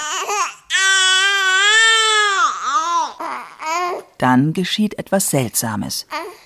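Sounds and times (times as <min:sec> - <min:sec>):
baby crying: 0:00.0 - 0:04.2, 0:06.1 - 0:06.4
speech: 0:04.2 - 0:06.4.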